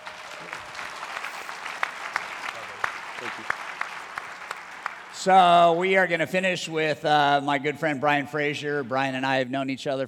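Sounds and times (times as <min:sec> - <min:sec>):
room full of people clapping: 0:00.0 - 0:05.7
speech: 0:03.2 - 0:03.6, 0:05.2 - 0:10.0.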